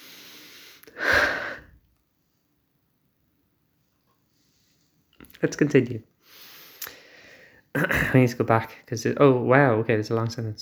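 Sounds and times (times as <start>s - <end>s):
person taking a deep breath: 0.0s - 1.8s, 6.2s - 7.7s
faint hiss: 0.0s - 10.6s
speech: 5.4s - 6.1s, 7.8s - 10.6s.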